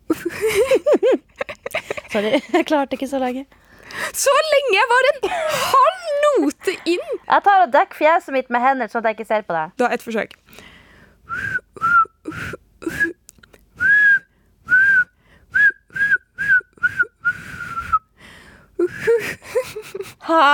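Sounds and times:
laughter: 0.1s - 2.7s, 19.1s - 20.5s
speech: 2.1s - 3.6s, 4.2s - 10.7s, 20.3s - 20.5s
audible breaths between whistled notes: 3.6s - 4.2s, 10.5s - 11.4s, 14.3s - 15.6s, 17.3s - 18.8s
person whistling a tune on one note: 11.3s - 13.2s, 13.8s - 18.1s.

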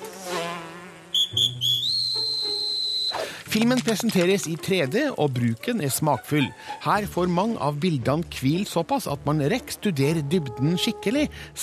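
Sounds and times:
ant character voice of shrill referee-whistle tones in an animated 3D film: 1.2s - 3.2s
soft music: 3.5s - 11.6s
speech: 3.5s - 11.6s.

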